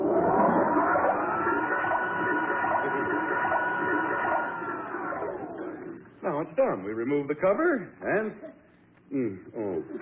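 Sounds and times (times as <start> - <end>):
washing machine motor running with a shirt and washing powder inside: 0.0 - 6.0
speech: 6.6 - 10.0.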